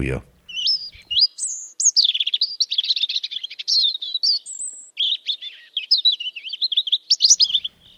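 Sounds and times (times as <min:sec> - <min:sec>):
speech: 0:00.0 - 0:00.3
European robin singing: 0:00.0 - 0:07.9.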